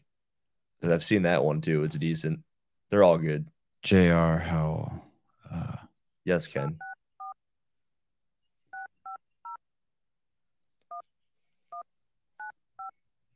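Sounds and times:
speech: 0.8s - 5.7s, 6.3s - 6.9s
touch-tone beeps from a phone keypad being dialed: 8.8s - 9.6s.

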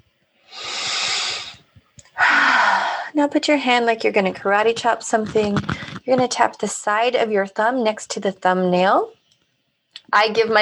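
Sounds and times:
big deep breath during a wrist-tapping relaxation exercise: 0.5s - 3.2s
speech: 3.2s - 9.2s, 10.1s - 10.6s.

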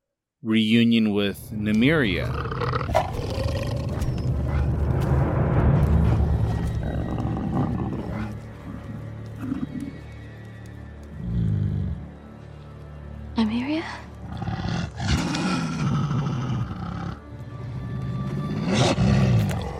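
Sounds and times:
speech: 0.4s - 3.0s
pack of wolves growling and snarling: 2.2s - 10.2s, 11.1s - 12.2s, 14.2s - 19.7s.

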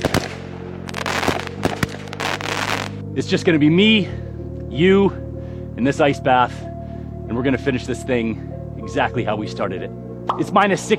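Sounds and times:
fireworks popping and crackling with sharp bangs: 0.0s - 3.0s
speech: 3.2s - 5.2s, 5.8s - 6.7s, 7.3s - 10.9s.

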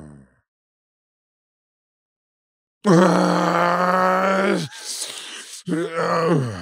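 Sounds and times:
voice imitating snoring with sleep apnea: 0.0s - 0.2s, 2.9s - 6.5s.

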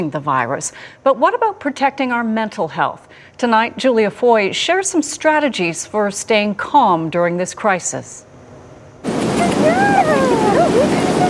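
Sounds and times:
speech: 0.0s - 8.3s, 9.4s - 11.2s
brisk wind rushing at a seaside park: 9.0s - 11.2s.

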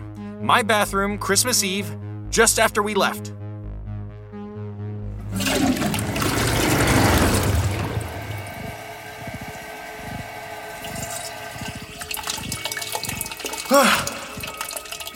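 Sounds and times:
speech: 0.4s - 3.4s
toilet flushing and tank refilling: 5.2s - 15.1s.

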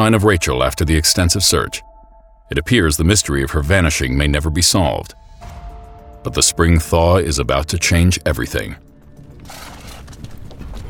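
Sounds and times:
speech: 0.0s - 1.9s, 2.5s - 5.5s, 6.2s - 8.9s
horses walking with hooves clip-clopping on a horseback ride: 9.2s - 10.8s.

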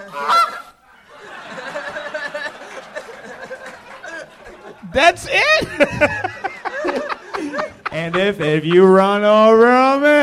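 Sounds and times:
goose honking and cackling: 0.0s - 0.8s
laughter: 0.0s - 10.2s
speech: 5.0s - 6.2s, 8.0s - 10.2s.

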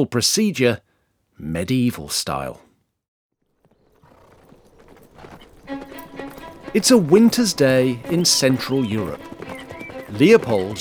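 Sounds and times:
speech: 0.0s - 2.7s, 6.8s - 9.4s, 10.1s - 10.8s
horses' hooves drumming on hard ground: 3.4s - 10.8s.

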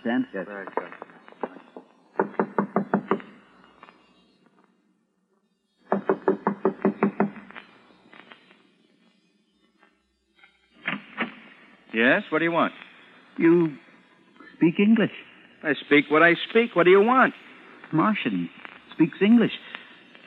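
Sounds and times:
speech: 0.1s - 1.1s, 12.2s - 13.8s, 14.6s - 19.6s
rapid solid knocking on a door: 1.4s - 3.2s, 5.9s - 7.4s.

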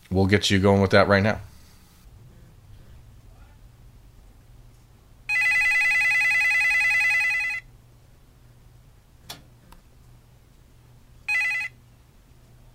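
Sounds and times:
low hum: 0.0s - 12.7s
speech: 0.2s - 1.5s
telephone ringing as an outgoing call is placed: 5.3s - 7.7s, 11.2s - 11.8s.

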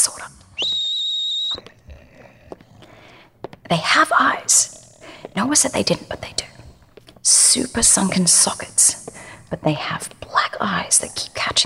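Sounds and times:
speech: 0.0s - 0.7s, 3.7s - 4.8s, 5.4s - 6.5s, 7.2s - 11.6s
loud shrill whistle blast: 0.6s - 1.6s.

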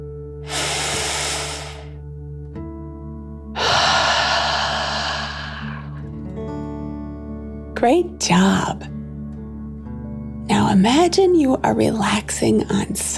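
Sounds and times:
breathy exhale through the mouth: 0.4s - 2.0s, 3.6s - 6.1s
deep inhale through the nose: 0.4s - 2.0s, 3.6s - 6.1s
soft steady musical background: 2.0s - 13.1s
speech: 7.8s - 9.0s, 10.6s - 13.1s.

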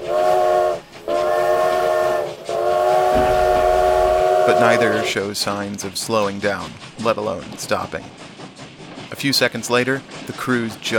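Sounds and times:
steam train whistles blowing: 0.0s - 5.3s
low rumble of rolling train: 0.0s - 10.9s
speech: 4.5s - 8.3s, 9.2s - 10.9s.

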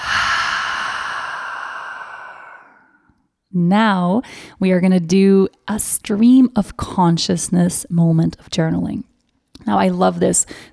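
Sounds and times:
deep breath in and exhaling through an open mouth: 0.0s - 3.1s
speech: 3.6s - 10.7s.

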